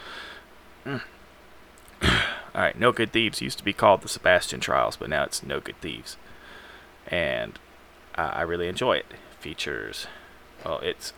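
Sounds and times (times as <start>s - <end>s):
person clearing throat: 0.8s - 1.2s, 2.0s - 2.5s
speech: 0.8s - 1.2s, 2.6s - 6.4s, 7.1s - 7.6s, 8.2s - 11.1s.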